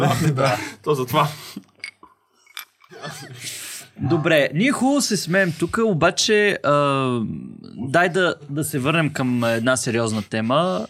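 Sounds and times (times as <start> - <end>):
people laughing: 0.0 - 0.8, 2.9 - 3.6
speech: 0.0 - 1.7, 3.0 - 10.8
glasses clinking in a toast: 1.6 - 3.2.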